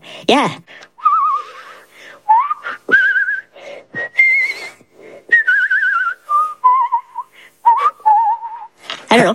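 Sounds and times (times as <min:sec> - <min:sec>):
brief breaths: 0:00.0 - 0:05.4, 0:07.2 - 0:07.7
speech: 0:00.2 - 0:00.8
person whistling a melody with pronounced vibrato: 0:01.0 - 0:08.7.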